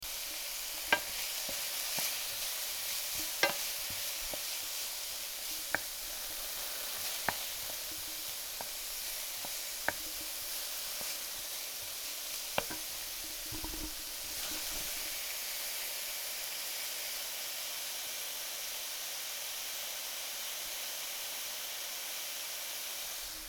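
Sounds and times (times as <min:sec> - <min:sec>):
leeks sauteing: 0:00.0 - 0:23.4.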